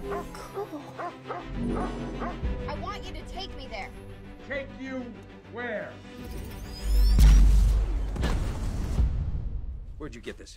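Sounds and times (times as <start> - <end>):
dog barking short yappy barks: 0.0 - 2.4
speech: 3.0 - 8.3, 10.0 - 10.5.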